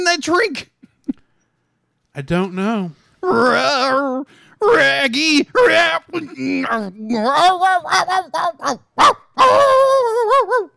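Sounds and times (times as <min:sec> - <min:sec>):
speech: 0:00.1 - 0:00.7, 0:02.2 - 0:10.7
person imitating a dog with a warbling howl: 0:03.2 - 0:04.9, 0:05.6 - 0:08.8, 0:09.4 - 0:10.7
person imitating a dog with yelps and barks: 0:03.2 - 0:10.7.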